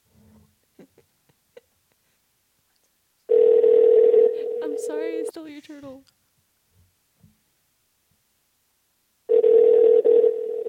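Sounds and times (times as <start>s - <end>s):
electronic telephone tone before the call is answered: 3.3s - 5.2s, 9.3s - 10.6s
speech: 5.4s - 6.2s.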